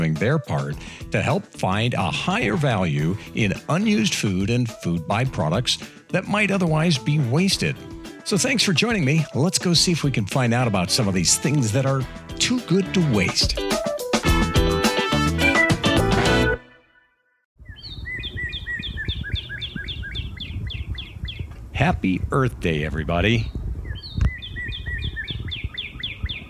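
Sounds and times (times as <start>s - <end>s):
speech: 0.0s - 13.8s, 21.8s - 23.6s
music: 0.0s - 17.4s
northern cardinal singing in a backyard tree: 17.6s - 21.5s, 23.4s - 26.4s.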